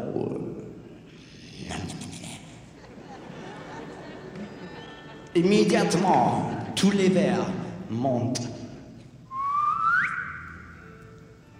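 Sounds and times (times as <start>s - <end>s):
laughter: 2.6s - 7.5s
speech: 5.4s - 8.5s
man whistling a rising note: 9.3s - 10.7s.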